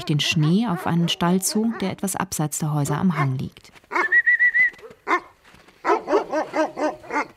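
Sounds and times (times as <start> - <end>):
large white dog barking in a yard: 0.0 - 2.0, 4.8 - 7.3
speech: 0.0 - 3.8.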